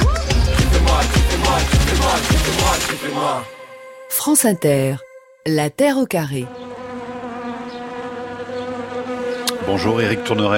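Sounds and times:
dense swarm of bees buzzing: 0:00.4 - 0:03.5, 0:05.9 - 0:10.5
speech: 0:04.2 - 0:06.6, 0:09.6 - 0:10.5.

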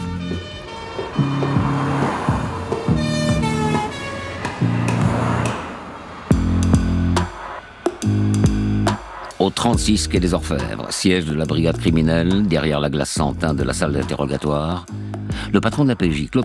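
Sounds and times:
harsh horn-like honks: 0:00.0 - 0:09.2
police car siren blaring in two-tone blasts: 0:00.0 - 0:09.4
speech: 0:09.4 - 0:16.4.

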